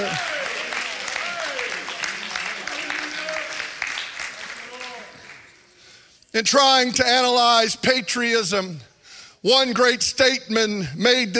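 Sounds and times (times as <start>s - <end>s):
crowd clapping: 0.0s - 6.0s
speech: 6.4s - 11.3s.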